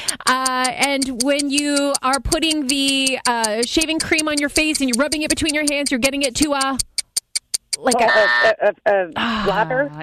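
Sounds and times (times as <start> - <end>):
sharp clicks: 0.0 - 8.0
speech: 0.3 - 6.9, 7.8 - 10.0
game show buzzer: 7.8 - 8.5.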